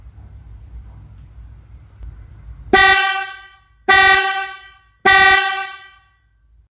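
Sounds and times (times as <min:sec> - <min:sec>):
bass horn tone at 390 to 430 Hz: 0:02.7 - 0:06.3.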